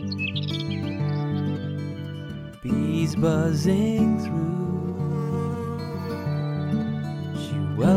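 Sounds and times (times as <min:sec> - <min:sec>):
birds chirping in a garden: 0:00.0 - 0:03.6, 0:05.4 - 0:07.8
speech: 0:02.6 - 0:04.6.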